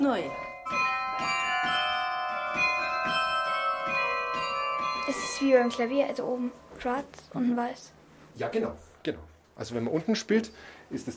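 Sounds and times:
speech: 0.0 - 0.8, 5.1 - 11.1
carillon bells in a larch-wood bell frame ringing up a tower: 0.0 - 7.0.

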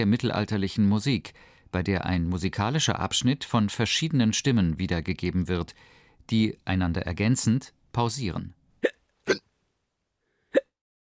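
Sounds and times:
speech: 0.0 - 9.4
short sharp hiccups: 8.8 - 9.5, 10.6 - 10.8.

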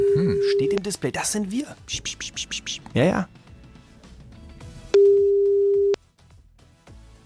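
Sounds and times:
phone ringback tone while a call connects: 0.0 - 0.8, 5.0 - 6.0
speech: 0.6 - 3.4.

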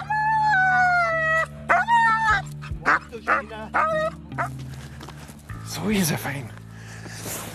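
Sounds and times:
search dog howling and yelping while lowered on a rope in mountain rescue training: 0.0 - 4.6
speech: 5.8 - 6.6.

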